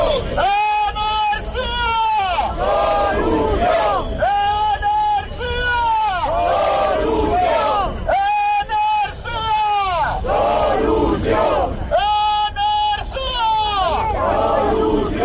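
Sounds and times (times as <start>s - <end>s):
constant outdoor murmur: 0.0s - 15.2s
protest crowd chanting slogans over energy prices: 2.3s - 4.8s, 6.2s - 8.4s, 9.7s - 12.0s, 13.8s - 15.2s.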